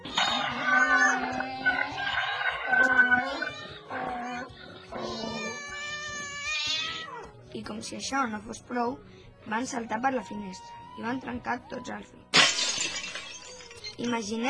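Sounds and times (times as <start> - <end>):
cat meowing: 0.0 - 7.3
donkey braying: 0.0 - 7.3
rooster crowing: 1.7 - 3.2
speech: 7.7 - 12.4, 14.0 - 14.4.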